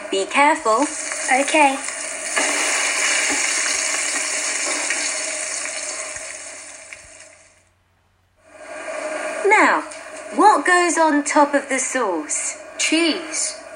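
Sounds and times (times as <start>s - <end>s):
speech: 0.1s - 2.6s, 9.6s - 13.4s
onions frying in a pan while making pizza: 0.6s - 7.4s.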